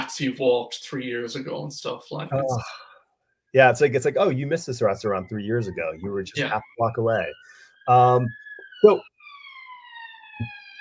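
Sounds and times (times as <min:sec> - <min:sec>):
speech: 0:00.1 - 0:02.9, 0:03.5 - 0:09.1
brief bursts of voice: 0:02.3 - 0:02.8, 0:05.2 - 0:09.0
passing emergency vehicle siren wailing: 0:03.8 - 0:10.8.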